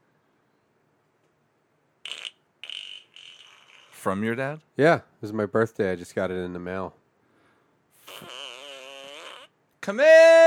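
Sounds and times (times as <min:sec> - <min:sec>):
fart machine making a buzzy electronic fart: 0:02.0 - 0:04.1, 0:08.0 - 0:09.6
speech: 0:04.0 - 0:07.0, 0:09.8 - 0:10.4.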